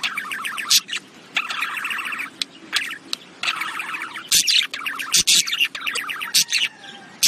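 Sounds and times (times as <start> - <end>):
budgerigar chattering with warbling notes and scratchy chirps: 0.0 - 7.2.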